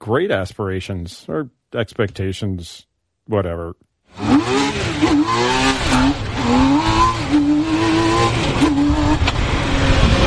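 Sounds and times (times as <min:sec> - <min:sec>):
speech: 0:00.0 - 0:06.8
three-wheeled sports car engine revving and accelerating: 0:04.1 - 0:10.2.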